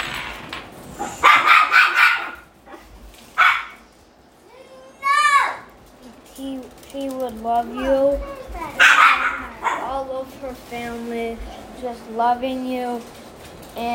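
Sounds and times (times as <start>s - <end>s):
puppy barking and yapping: 1.0s - 3.9s, 8.7s - 9.9s
speech: 7.5s - 8.3s, 10.2s - 13.2s, 13.8s - 13.9s.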